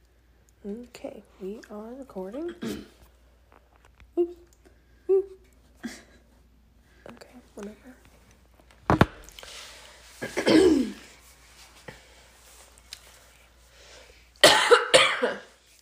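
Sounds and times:
speech: 0.6 - 3.0, 7.6 - 7.9
person clearing throat: 2.5 - 3.0, 10.2 - 11.1, 14.4 - 15.5
person coughing: 2.5 - 3.0, 10.2 - 11.1, 14.4 - 15.6.

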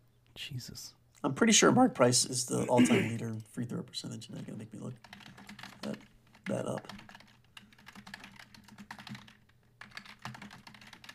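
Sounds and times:
speech: 0.4 - 7.0
rapid clattery typing on a loud mechanical keyboard: 4.4 - 11.1.

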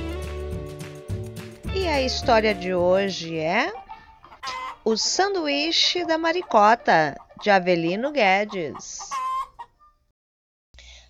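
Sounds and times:
speech: 1.8 - 3.8, 4.8 - 9.2
hen clucking: 1.8 - 10.1.

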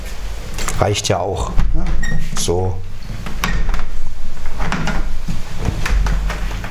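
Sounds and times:
speech: 0.8 - 2.9
window frame and latch clunking while being closed: 1.5 - 6.6.

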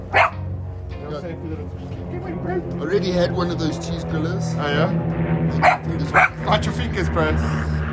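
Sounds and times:
excited puppy barking and yipping: 0.1 - 0.4, 5.6 - 6.4
speech: 1.1 - 7.8.

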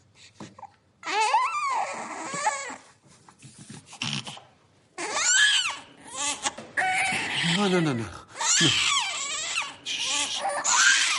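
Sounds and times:
baby crying inside a box: 1.0 - 2.8, 5.0 - 11.1
speech: 7.6 - 9.0.

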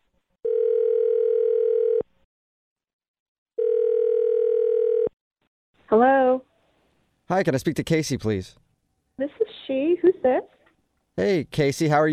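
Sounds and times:
telephone dial tone: 0.5 - 2.1, 3.6 - 5.1
speech: 5.9 - 6.5, 7.3 - 8.6, 9.2 - 10.6, 11.2 - 12.1.

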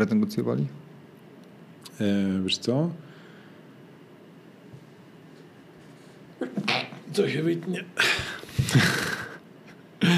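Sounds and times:
speech: 0.0 - 0.9, 2.0 - 3.1, 7.2 - 9.1
person sneezing with catching inhales: 8.0 - 9.4.

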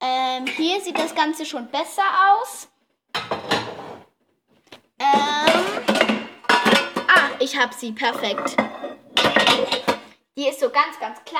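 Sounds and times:
metal pots clattering as they are pulled out of a drawer: 0.3 - 1.5, 3.2 - 4.1, 5.0 - 10.2
speech: 0.7 - 2.7, 7.4 - 8.9, 10.4 - 11.3.

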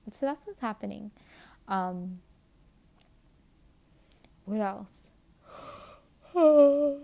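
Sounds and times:
speech: 0.2 - 2.3, 4.5 - 5.1, 6.4 - 7.0
person yawning with a voiced sigh: 5.5 - 7.0.

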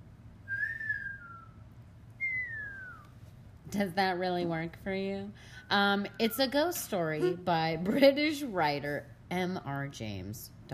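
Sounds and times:
low steady hum: 0.0 - 10.7
person whistling drawn-out downward-sliding notes: 0.5 - 1.6, 2.2 - 3.1
speech: 3.7 - 10.7.

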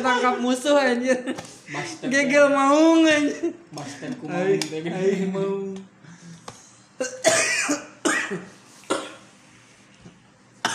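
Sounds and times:
speech: 0.0 - 5.9, 7.0 - 8.5
person coughing harshly: 7.0 - 9.3.

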